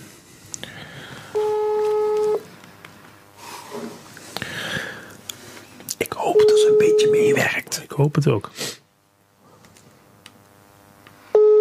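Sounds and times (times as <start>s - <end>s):
telephone beep as a call is being placed: 1.4s - 2.4s, 6.3s - 7.4s, 11.4s - 11.5s
speech: 7.0s - 8.7s.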